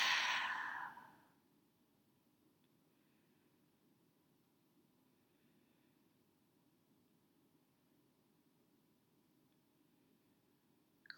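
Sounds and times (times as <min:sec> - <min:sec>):
exhaling through open mouth in breathing exercise: 0:00.0 - 0:01.2.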